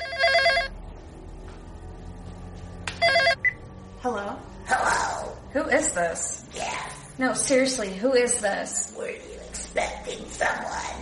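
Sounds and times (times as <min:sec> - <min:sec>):
telephone ringing with a trilling electronic bell: 0:00.0 - 0:00.8, 0:03.0 - 0:03.7
low hum: 0:00.0 - 0:11.0
speech: 0:05.7 - 0:06.4, 0:07.2 - 0:09.2.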